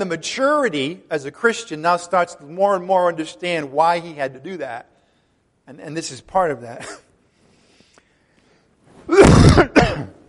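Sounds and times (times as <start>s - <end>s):
speech: 0.0s - 4.9s, 5.7s - 7.0s, 9.1s - 9.9s
rough coughs into an elbow: 9.0s - 10.2s.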